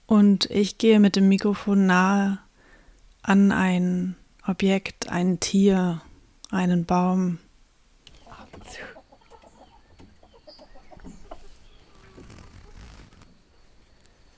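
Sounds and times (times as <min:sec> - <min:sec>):
speech: 0:00.1 - 0:02.4, 0:03.2 - 0:07.4, 0:08.7 - 0:08.9
chickens clucking: 0:08.1 - 0:12.2
rustling: 0:11.0 - 0:14.3.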